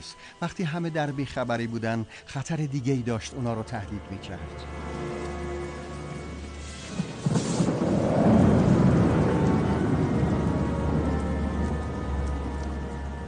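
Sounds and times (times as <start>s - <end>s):
speech: 0.0s - 5.0s
rain from a thunderstorm: 4.4s - 13.2s
thunder rumbling in a thunderstorm: 4.9s - 13.2s
sharp thunder cracks: 6.2s - 13.2s.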